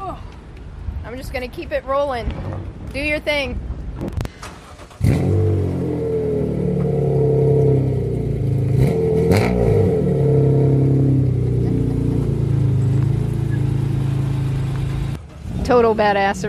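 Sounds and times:
speech: 0:01.1 - 0:04.3, 0:15.7 - 0:16.4
car engine revving while driven up into a trailer: 0:04.6 - 0:16.4.

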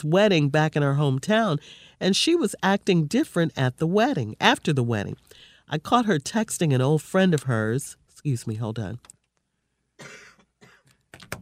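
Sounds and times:
speech: 0:00.0 - 0:09.1
person coughing harshly: 0:10.0 - 0:10.9.

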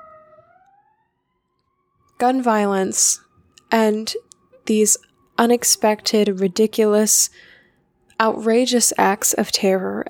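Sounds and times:
emergency vehicle siren wailing: 0:00.0 - 0:07.7
speech: 0:02.2 - 0:07.5, 0:08.2 - 0:10.0.

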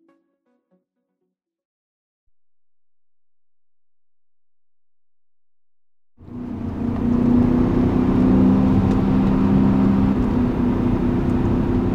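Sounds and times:
car engine humming while driving mountain roads in the Hudson Valley: 0:06.2 - 0:11.9
road noise: 0:06.2 - 0:11.9.

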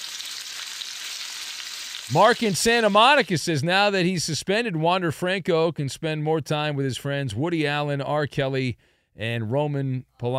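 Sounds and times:
crackling sizzle of food frying in hot oil: 0:00.0 - 0:03.4
speech: 0:02.1 - 0:10.3.

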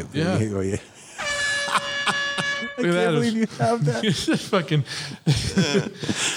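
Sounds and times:
speech: 0:00.0 - 0:01.0, 0:02.6 - 0:06.3
laughter: 0:00.7 - 0:06.3
brief low honk: 0:01.2 - 0:03.4
sustained air horn blast: 0:01.2 - 0:03.4.

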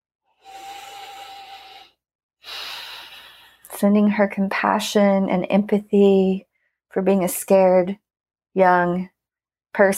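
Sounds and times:
big deep breath: 0:00.4 - 0:03.7
speech: 0:03.8 - 0:09.1, 0:09.8 - 0:09.9.

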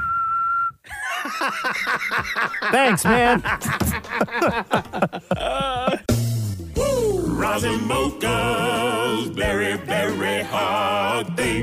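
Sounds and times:
person whistling a clear high note: 0:00.0 - 0:00.9
laughter: 0:00.9 - 0:06.1
speech: 0:01.2 - 0:06.0, 0:07.4 - 0:11.6.

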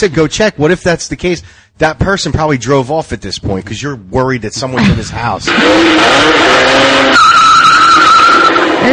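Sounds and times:
speech: 0:00.0 - 0:07.3
car tires skidding as crash sound effect: 0:05.5 - 0:08.9.

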